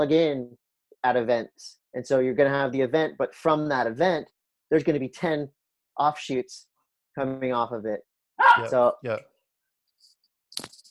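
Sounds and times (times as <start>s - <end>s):
speech: 0.0s - 9.3s
dog barking in the house: 8.4s - 8.8s.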